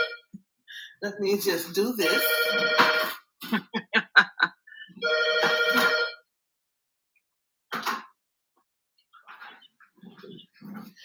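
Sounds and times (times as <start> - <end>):
home landline telephone ringing with warbling electronic pulses: 0.0 - 0.3, 1.9 - 3.2, 5.0 - 6.2
speech: 1.0 - 3.8
laughter: 3.4 - 4.9.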